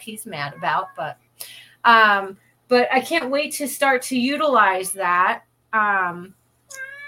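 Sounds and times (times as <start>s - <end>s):
speech: 0.0s - 6.9s
male cat meowing insistently: 0.4s - 1.1s, 6.7s - 7.0s.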